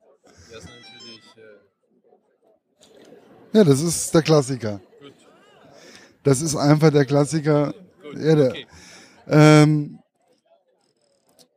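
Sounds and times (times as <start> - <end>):
smartphone ringtone melody: 0.5 - 1.4
speech: 0.5 - 4.9, 6.2 - 10.0.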